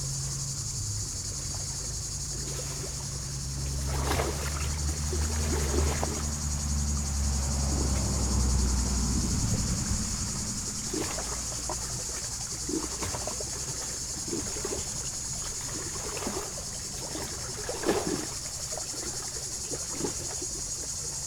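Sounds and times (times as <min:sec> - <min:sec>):
passing road vehicle rumble: 0:00.0 - 0:13.0
cicadas buzzing in poplars at the water's edge of Lac du Bourget: 0:00.0 - 0:21.2
water lapping on rocks at Lac du Bourget: 0:00.7 - 0:21.2.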